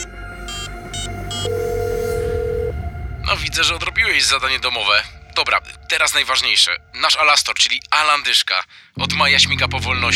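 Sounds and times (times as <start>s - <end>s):
telephone ringing: 0.0s - 2.8s
constant low hum: 0.0s - 8.0s
speech: 3.6s - 10.1s.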